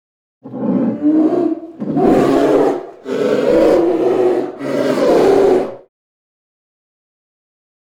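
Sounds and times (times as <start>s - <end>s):
polar bear growling and roaring: 0.4s - 5.9s.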